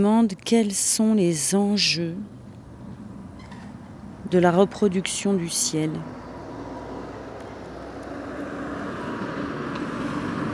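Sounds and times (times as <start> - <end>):
speech: 0.0 - 2.4, 4.3 - 6.2
cars and trucks passing through village: 0.0 - 10.5.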